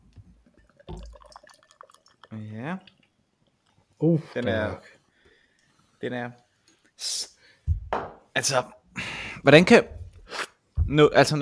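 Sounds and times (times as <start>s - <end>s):
beer spattering and dripping: 0.0s - 3.7s
beer spraying up from a freshly opened 50 cl bottle of imperial stout: 0.4s - 3.0s
speech: 2.4s - 3.0s, 4.0s - 5.0s, 6.0s - 6.4s, 7.0s - 7.3s, 8.4s - 8.8s, 9.4s - 10.0s, 10.9s - 11.3s.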